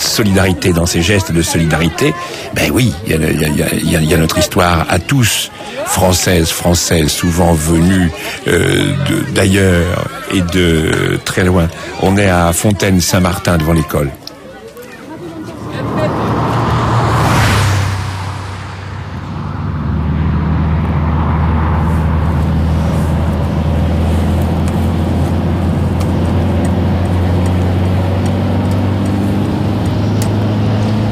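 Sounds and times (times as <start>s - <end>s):
road noise: 0.0s - 31.1s
speech: 0.2s - 14.2s
steady low engine rumble: 14.8s - 31.1s
heavy truck roaring past: 15.0s - 31.1s.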